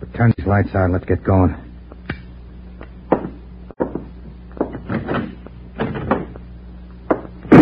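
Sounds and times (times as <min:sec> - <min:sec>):
speech: 0:00.2 - 0:01.6
door bang as it is kicked shut: 0:04.7 - 0:06.4.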